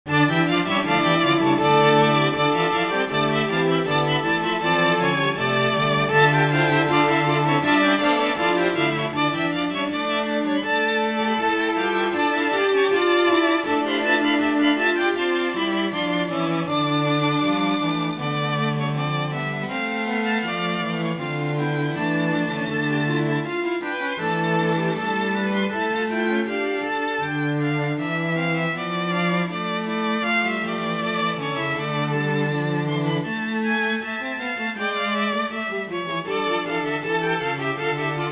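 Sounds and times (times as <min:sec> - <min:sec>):
string instruments: 0:00.0 - 0:38.3.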